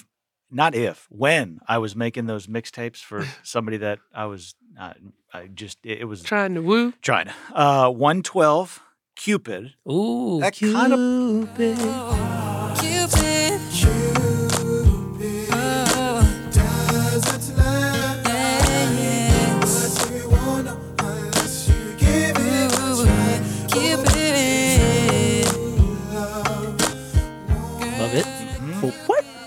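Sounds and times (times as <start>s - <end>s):
speech: 0.5s - 12.4s
smooth R&B song with layered sung vocals: 10.5s - 29.4s
laughter: 28.1s - 29.4s.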